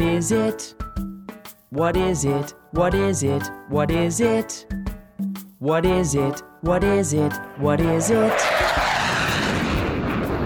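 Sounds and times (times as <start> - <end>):
speech: 0.2 - 1.1, 1.7 - 4.8, 5.6 - 9.0
jet aircraft passing: 7.9 - 10.4.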